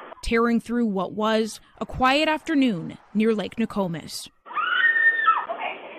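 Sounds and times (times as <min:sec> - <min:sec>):
speech: 0:00.2 - 0:04.4
desperate screams recorded through a doorbell camera: 0:04.5 - 0:05.5.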